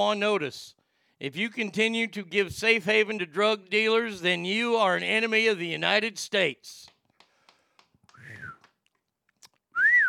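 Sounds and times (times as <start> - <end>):
speech: 0.0 - 6.9
person whistling two short notes: 8.1 - 8.7, 9.8 - 10.0.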